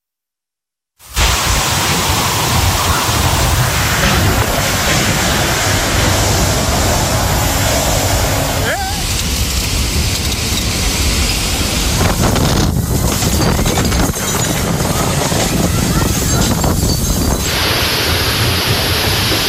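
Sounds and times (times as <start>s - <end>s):
heavy rain pouring from a cloudburst in the Valencia region of Spain: 1.0s - 19.4s.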